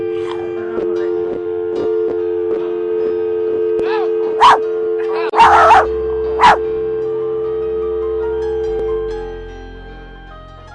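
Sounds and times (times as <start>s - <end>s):
steady electrical hum: 0.0s - 10.2s
dog barking: 4.4s - 4.6s, 5.4s - 6.6s.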